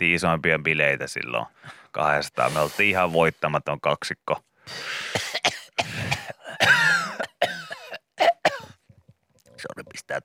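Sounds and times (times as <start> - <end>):
speech: 0.0 - 6.2, 9.7 - 10.2
gasping breaths: 4.6 - 5.2
coughing fit brought on by wheat: 5.0 - 8.8.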